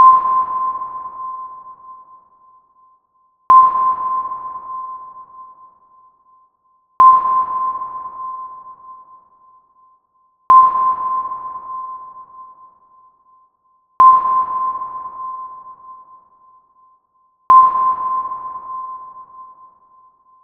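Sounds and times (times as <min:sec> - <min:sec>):
boat sub sonar: 0:00.0 - 0:20.4.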